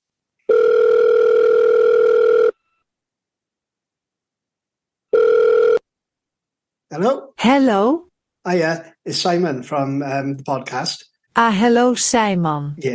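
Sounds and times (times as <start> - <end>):
buzzy telephone ringback tone over the line on an outgoing call: 0.5 - 2.8, 5.1 - 5.8
speech: 7.0 - 12.9.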